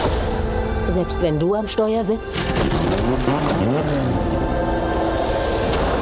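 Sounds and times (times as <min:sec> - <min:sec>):
speech: 0:00.9 - 0:04.3
race car engine roaring while overtaking on a track in the rain: 0:02.2 - 0:06.0.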